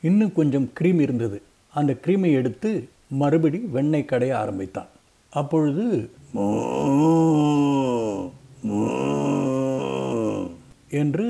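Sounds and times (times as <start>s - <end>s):
speech: 0.0s - 10.2s, 10.9s - 11.2s
person imitating a cow mooing: 6.2s - 10.8s.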